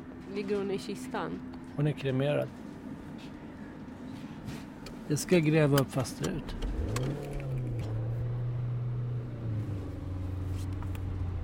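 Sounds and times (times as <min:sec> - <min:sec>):
speech: 0:00.4 - 0:02.6, 0:04.5 - 0:07.0
small car engine humming inside the cabin while driving: 0:04.8 - 0:11.4.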